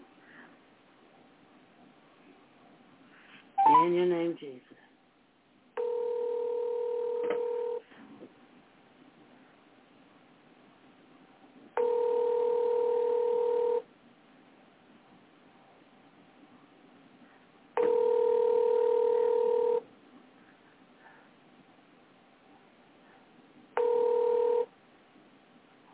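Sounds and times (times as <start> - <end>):
steady electronic telephone line tone over a phone connection: 3.6 - 3.9, 5.8 - 7.9, 11.8 - 13.9, 17.8 - 19.9, 23.7 - 24.7
speech: 3.8 - 4.9.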